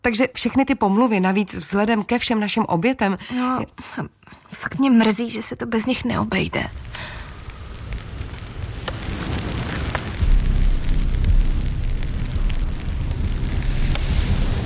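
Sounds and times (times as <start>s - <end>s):
speech: 0.0s - 7.2s
fire crackling and roaring with a dense low rumble: 6.0s - 14.6s.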